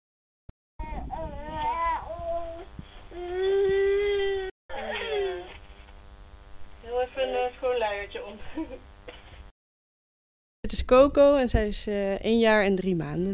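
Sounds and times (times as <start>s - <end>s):
toddler of one year and three months crying through a baby monitor: 0.8s - 5.6s
speech: 8.1s - 8.9s, 10.8s - 13.3s.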